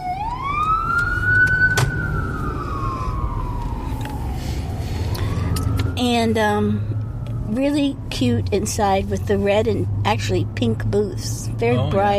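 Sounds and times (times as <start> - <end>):
ambulance siren wailing past: 0.0 - 8.6
steady rumble of street traffic: 0.0 - 12.1
speech: 6.2 - 6.9, 7.5 - 12.1.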